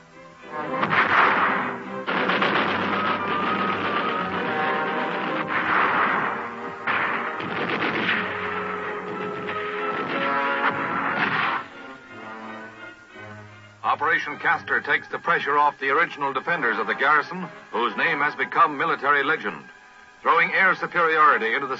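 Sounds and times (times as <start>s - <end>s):
machine gun fire in battle at a besieged garrison: 0.8s - 11.7s
speech: 14.2s - 19.7s, 20.4s - 21.7s.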